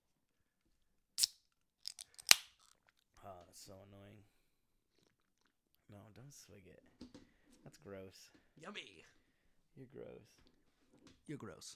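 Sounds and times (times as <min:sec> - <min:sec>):
beer can cracked open against a microphone: 0:01.2 - 0:02.8
speech: 0:03.6 - 0:04.3, 0:05.9 - 0:09.2, 0:09.8 - 0:11.7.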